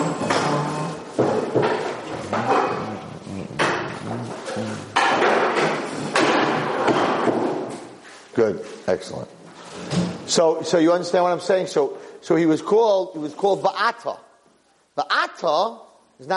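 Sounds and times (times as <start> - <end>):
two chairs being set down on a hard floor by an open back door: 0.1 - 7.9
speech: 8.9 - 9.4, 10.3 - 14.3, 14.9 - 16.3.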